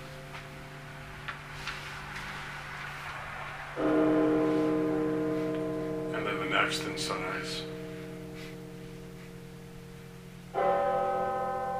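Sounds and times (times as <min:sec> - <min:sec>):
single deep Russian church bell ringing: 0:00.0 - 0:01.0, 0:03.8 - 0:11.7
speech: 0:06.6 - 0:07.7.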